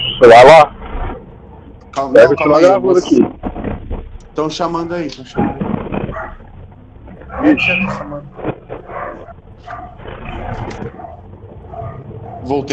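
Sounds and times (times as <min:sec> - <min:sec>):
speech: 0:00.2 - 0:00.8, 0:02.0 - 0:03.4, 0:04.4 - 0:05.6, 0:07.4 - 0:08.2, 0:12.5 - 0:12.7
dogs barking: 0:05.2 - 0:06.6, 0:07.2 - 0:12.7.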